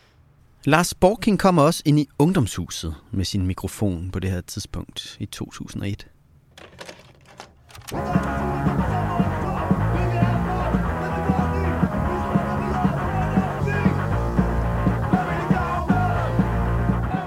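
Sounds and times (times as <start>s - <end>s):
speech: 0.6s - 6.1s, 7.9s - 8.8s
driving drums keeping a steady beat: 7.8s - 17.2s
thick distorted guitar: 7.9s - 17.2s.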